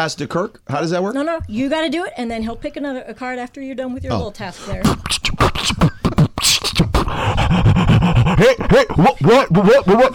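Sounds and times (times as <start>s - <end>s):
speech: 0.0s - 5.9s, 8.4s - 10.1s
amateur beatboxing with mouth clicks and puffs: 4.0s - 10.1s
heavy breathing: 4.2s - 9.0s.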